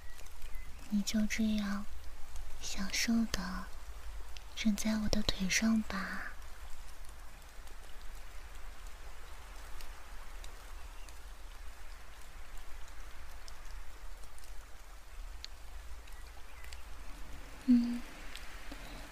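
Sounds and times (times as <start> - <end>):
steady rain: 0.0 - 19.1
speech: 0.9 - 1.9, 2.6 - 3.8, 4.6 - 6.3.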